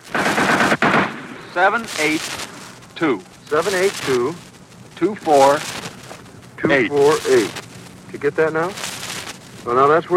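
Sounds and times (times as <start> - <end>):
machine gun fire in battle from an infantry platoon on a hilltop: 0.0 - 2.8
speech: 1.6 - 5.8, 6.6 - 8.8, 9.6 - 10.1.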